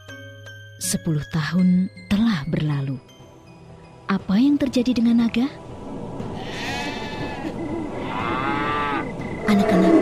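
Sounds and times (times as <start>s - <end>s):
speech: 0.8s - 3.1s, 4.1s - 5.7s
water buffalo crying out: 6.4s - 10.0s.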